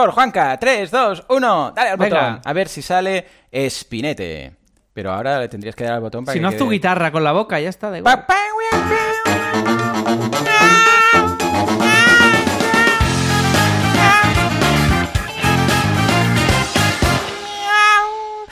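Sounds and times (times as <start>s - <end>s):
speech: 0.0s - 9.0s
operatic voice imitating a cat with meow-like notes: 8.3s - 13.2s, 13.9s - 14.6s
busy musical accompaniment: 8.7s - 17.7s.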